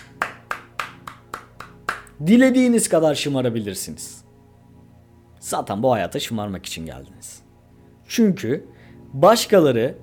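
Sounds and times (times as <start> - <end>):
single person clapping: 0.0 - 2.2
speech: 2.2 - 4.2, 5.5 - 7.4, 8.1 - 10.0.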